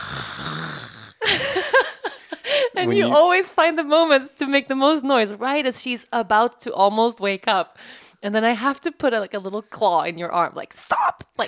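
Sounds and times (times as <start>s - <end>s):
very large man vocally imitating his own loud yawn: 0.0s - 1.2s
speech: 2.8s - 11.4s.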